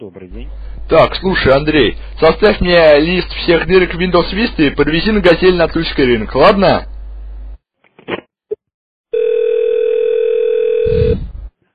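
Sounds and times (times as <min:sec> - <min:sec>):
speech: 0:00.0 - 0:06.9
steady telephone tone after the other party hangs up: 0:09.1 - 0:11.3.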